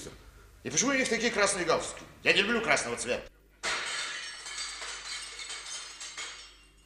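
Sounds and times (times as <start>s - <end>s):
speech: 0.0s - 3.3s
mirror glass shattering in a workshop: 3.6s - 6.8s
scattered mirror glass shards tinkling: 3.6s - 6.8s.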